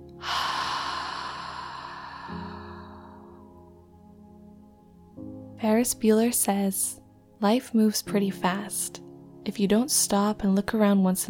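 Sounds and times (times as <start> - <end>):
deep breath in and out during a guided breathing exercise: 0.2 - 3.8
speech: 5.6 - 11.2.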